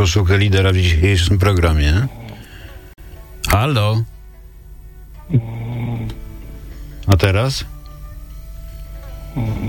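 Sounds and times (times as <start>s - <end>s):
speech: 0.0s - 2.2s, 3.5s - 4.1s, 5.3s - 5.6s, 7.1s - 7.7s, 9.4s - 9.6s
person snoring over a phone line: 1.9s - 2.9s, 5.2s - 6.3s, 9.3s - 9.6s.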